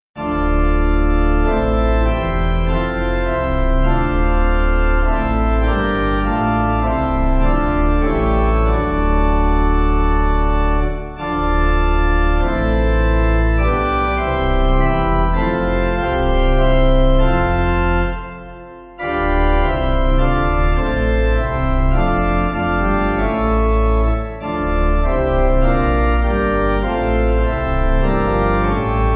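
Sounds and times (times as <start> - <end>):
pipe organ playing a chant: 0.2 - 29.1.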